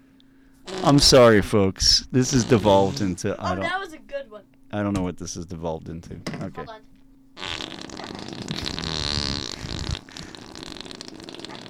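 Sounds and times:
room noise: 0.0 - 11.6
person blowing a raspberry imitating a fart: 0.7 - 1.3, 2.3 - 3.1, 7.4 - 11.6
speech: 0.8 - 6.9.

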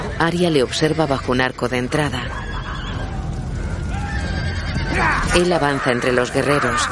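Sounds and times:
speech: 0.2 - 2.4, 5.0 - 6.8
steady low rumble of shuffling hooves: 1.0 - 6.8
horses among mounted riders in a plaza neighing: 1.8 - 6.8.

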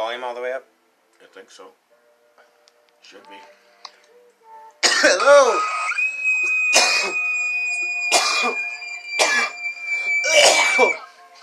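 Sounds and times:
speech: 0.0 - 1.8, 3.0 - 3.6, 5.0 - 5.8, 8.4 - 8.6, 10.3 - 11.0
person screaming through a distorted phone line: 5.2 - 11.1.

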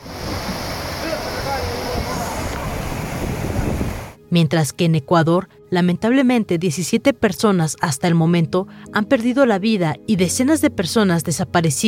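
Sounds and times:
rushing brown muddy floodwater: 0.0 - 4.2
wind buffeting the microphone: 0.0 - 4.2
speech: 4.3 - 11.8.

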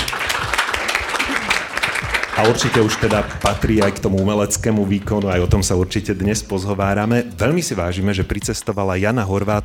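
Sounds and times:
crowd applauding a guest artist: 0.0 - 4.8
speech: 2.4 - 9.6.

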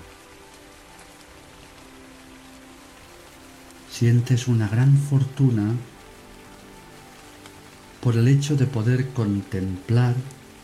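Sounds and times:
steady rain falling: 0.0 - 10.6
person speaking calmly: 3.9 - 5.9, 8.0 - 10.4
speech: 4.0 - 5.9, 8.0 - 10.4.

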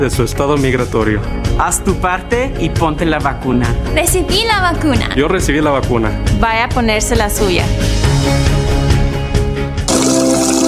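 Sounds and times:
speech: 0.0 - 8.6
running water: 9.9 - 10.6.

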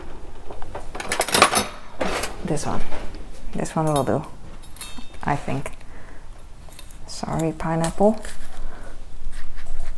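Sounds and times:
cutlery rattling and clinking in a drawer while rummaging for a knife: 0.4 - 5.4
speech: 2.5 - 4.3, 5.3 - 5.8, 7.2 - 8.4.

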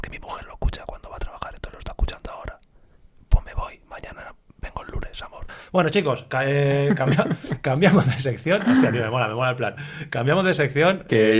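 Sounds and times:
person whispering very softly and breathily: 0.0 - 2.6, 3.3 - 5.5
speech: 5.7 - 11.3
laughter: 6.6 - 9.2.

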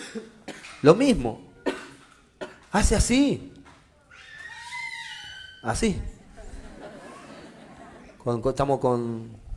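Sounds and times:
speech: 0.1 - 1.5, 2.7 - 3.6, 5.6 - 6.2, 8.2 - 9.4
child screaming: 4.1 - 5.7
laughter: 6.2 - 8.4.

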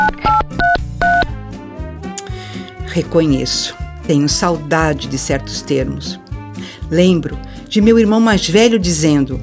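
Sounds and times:
touch-tone telephone keypad dialing tones: 0.0 - 1.3
speech: 3.0 - 6.2, 6.9 - 9.4.

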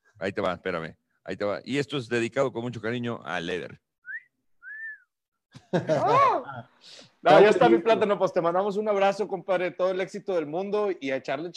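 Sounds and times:
speech: 0.2 - 3.8, 5.5 - 11.5
person whistling catcall whistles: 4.0 - 5.2.

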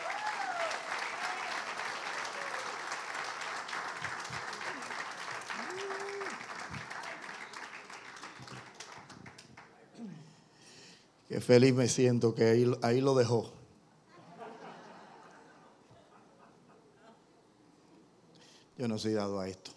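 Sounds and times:
large audience applauding: 0.0 - 9.7
speech: 11.4 - 13.6, 18.9 - 19.7
laughter: 14.1 - 17.4.

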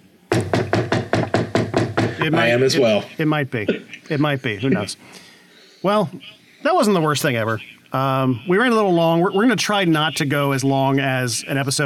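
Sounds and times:
knocking on wood: 0.3 - 2.3
speech: 2.2 - 5.2, 5.8 - 11.8.

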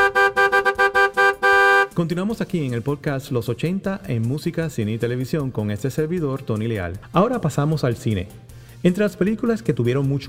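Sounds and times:
car horns honking: 0.0 - 2.0
speech: 2.0 - 10.2.

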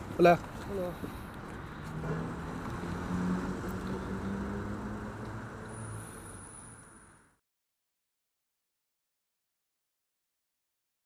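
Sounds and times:
speech: 0.2 - 1.3
motorcycles rumbling past on a busy street: 1.8 - 6.3.

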